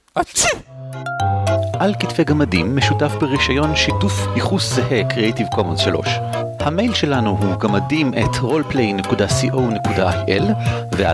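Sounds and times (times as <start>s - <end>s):
single loud sneeze with sharp breathy burst: 0.2s - 0.7s
speech: 0.2s - 1.1s, 1.8s - 11.1s.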